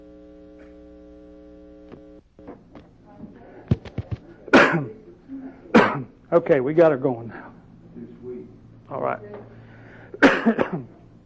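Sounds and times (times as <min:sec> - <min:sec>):
faint steady hum: 0:00.0 - 0:11.2
person coughing while testing a microphone: 0:04.5 - 0:05.0, 0:05.7 - 0:06.1, 0:10.2 - 0:11.0
speech: 0:06.3 - 0:07.5, 0:08.9 - 0:09.3, 0:10.4 - 0:10.9.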